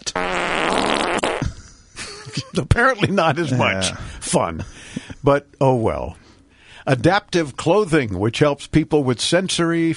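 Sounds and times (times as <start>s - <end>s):
buzzy fart sound effect from a Tesla car: 0.0s - 1.6s
laughter: 2.0s - 4.0s
speech: 2.6s - 6.2s, 6.8s - 9.9s.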